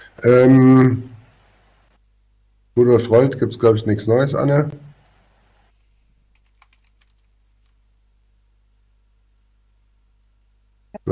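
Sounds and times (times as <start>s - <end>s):
faint hiss: 0.0s - 11.1s
steady low electrical hum: 0.0s - 11.1s
speech: 0.2s - 1.1s, 2.8s - 4.9s
computer keyboard typing: 6.3s - 7.8s.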